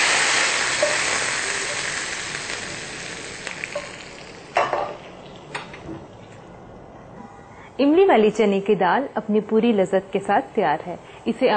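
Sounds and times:
hot tempering of onions and cumin sizzling over cooked tamarind chana dal: 0.0 - 5.7
speech: 7.8 - 11.5.

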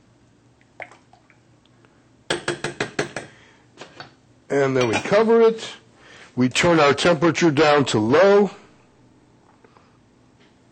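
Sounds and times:
spoon knocking against a pot as rice is stirred in water: 2.3 - 3.4
speech: 4.5 - 5.8, 6.4 - 8.6.

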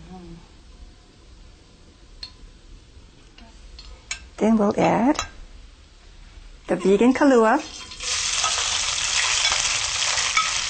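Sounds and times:
speech: 4.4 - 5.3, 6.7 - 7.8
vegan kalua sizzling in hot oil in a pan: 6.7 - 10.6.

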